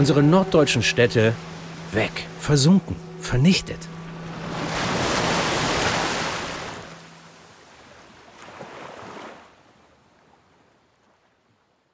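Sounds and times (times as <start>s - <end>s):
speech: 0.0s - 4.0s
low steady hum: 0.0s - 8.5s
heavy waves crashing against house walls: 0.0s - 9.5s.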